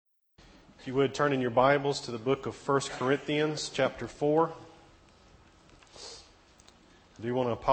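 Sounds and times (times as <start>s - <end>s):
faint hiss: 0.4s - 7.7s
speech: 0.8s - 4.6s, 7.2s - 7.7s
breathy sniff through the nose from a person with a head cold: 5.8s - 6.5s.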